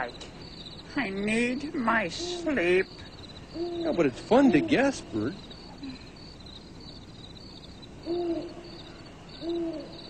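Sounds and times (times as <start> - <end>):
speech: 0.0 - 0.3, 1.0 - 6.0, 8.1 - 8.6, 9.4 - 10.0
owl hooting: 2.0 - 6.0, 8.0 - 10.0.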